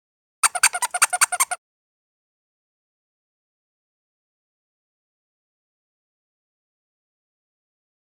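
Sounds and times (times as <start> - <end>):
children's toy squeaks: 0.4 - 1.6.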